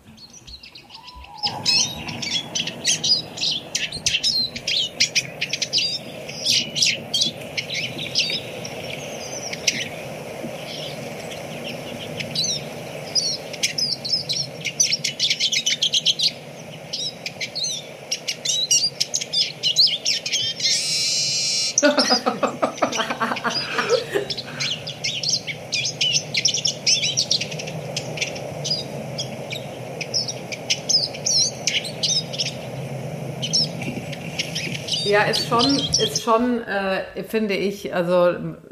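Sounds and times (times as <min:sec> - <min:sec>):
Eurasian siskin singing: 0:00.0 - 0:38.2
laughter: 0:21.8 - 0:24.8
speech: 0:35.5 - 0:38.7.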